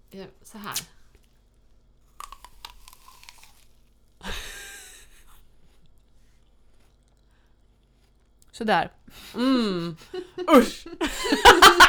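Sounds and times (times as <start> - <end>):
speech: 0.1 - 1.0, 8.6 - 11.8
person biting and chewing a firm apple: 0.7 - 4.2, 5.5 - 8.4
laughter: 4.2 - 5.3, 10.0 - 11.8.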